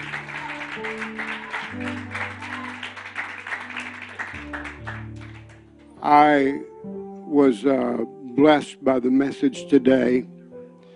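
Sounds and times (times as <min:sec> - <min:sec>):
audience clapping hands in praise: 0:00.0 - 0:06.0
sustained organ chords: 0:00.0 - 0:10.8
speech: 0:00.8 - 0:02.6, 0:06.0 - 0:10.4.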